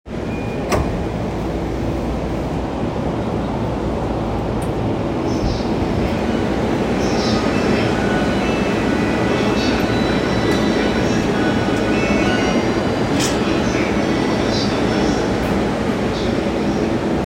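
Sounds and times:
Chuo Line Rapid train sounds at Musashi-Koganei: 0.1s - 17.2s.

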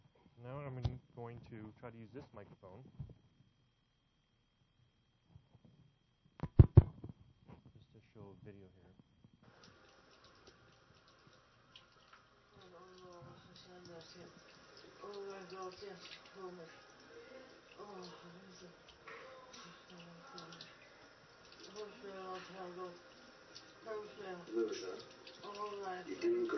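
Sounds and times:
speech: 0.4s - 3.3s, 13.7s - 16.8s, 17.8s - 20.7s, 21.7s - 23.1s, 23.8s - 26.5s
water running from a tap with knobs: 9.4s - 26.5s.

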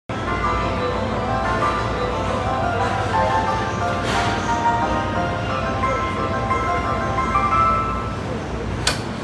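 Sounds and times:
Keihin-Tohoku Line train sounds north of Tokyo: 0.1s - 9.2s.

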